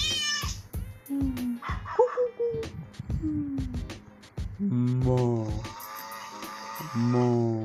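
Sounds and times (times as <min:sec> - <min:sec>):
child imitating a cat meowing: 0:00.0 - 0:00.6, 0:05.5 - 0:07.6
busy background of low rhythmic sounds: 0:00.1 - 0:07.6.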